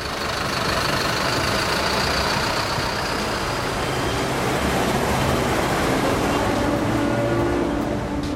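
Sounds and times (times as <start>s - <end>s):
bus engines idling: 0.0s - 8.3s
city traffic rumble: 0.0s - 8.3s.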